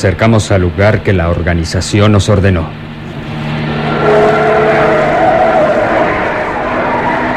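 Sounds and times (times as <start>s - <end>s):
speech: 0.0s - 2.9s
car engine humming while turning onto a road in Tangier: 2.7s - 7.3s
car tire squeal during a turn: 3.0s - 7.3s.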